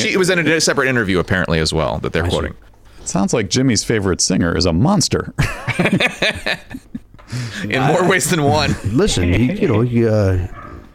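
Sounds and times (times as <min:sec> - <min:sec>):
speech: 0:00.0 - 0:10.6
laughter: 0:05.4 - 0:09.7
dog barking: 0:10.5 - 0:10.9.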